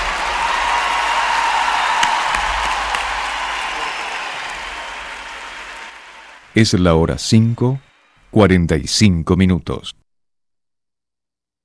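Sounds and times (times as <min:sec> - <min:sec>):
individual sharp claps: 0:00.0 - 0:06.5
large audience applauding: 0:00.0 - 0:06.8
speech: 0:06.6 - 0:10.0.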